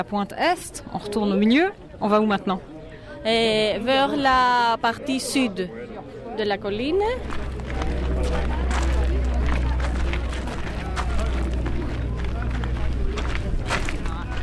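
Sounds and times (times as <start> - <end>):
speech: 0.0 - 5.8, 6.4 - 7.4
constant low rumble: 6.7 - 14.4
footsteps crunching on gravel, small stones and rocks on a hillside: 7.1 - 14.4.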